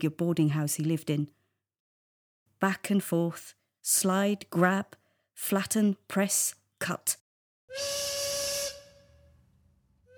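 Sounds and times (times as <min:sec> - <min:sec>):
speech: 0:00.0 - 0:01.4, 0:02.6 - 0:08.1
factory steam whistle blowing for the noon break: 0:07.7 - 0:09.4.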